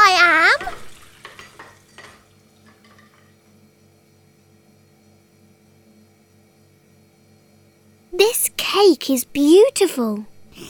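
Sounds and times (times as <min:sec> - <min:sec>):
kitchenware clinking and scraping while washing dishes in a sink: 0:00.6 - 0:03.4
speech: 0:08.8 - 0:10.6.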